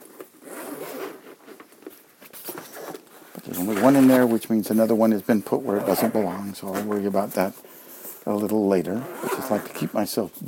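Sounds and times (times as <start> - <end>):
zipper on a lunch carry case pulled: 0.0 - 1.6, 2.5 - 4.3, 5.6 - 6.5, 8.9 - 9.9
speech: 3.6 - 10.4.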